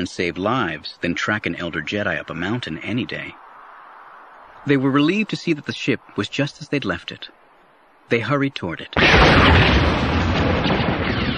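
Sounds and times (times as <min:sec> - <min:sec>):
speech: 0:00.0 - 0:03.4, 0:04.6 - 0:07.4, 0:08.1 - 0:10.9
explosion ripping up the ground and throwing dirt and rocks into the air: 0:09.0 - 0:11.3.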